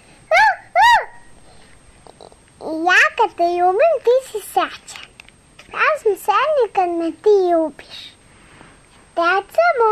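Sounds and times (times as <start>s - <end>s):
human voice imitating a dog barking: 0.3s - 1.3s
speech: 2.8s - 4.9s, 5.7s - 8.1s, 9.2s - 9.9s.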